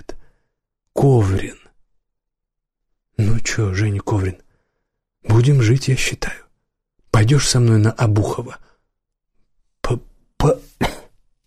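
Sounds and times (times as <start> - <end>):
speech: 1.0 - 1.7, 3.6 - 4.5, 5.3 - 6.4, 7.2 - 8.7, 9.9 - 10.6
man coughing: 10.6 - 11.2.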